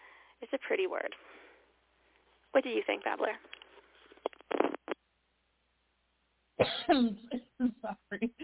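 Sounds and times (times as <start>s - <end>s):
speech: 0.4s - 1.4s, 2.5s - 3.6s, 6.6s - 8.4s
person coughing: 6.6s - 7.9s.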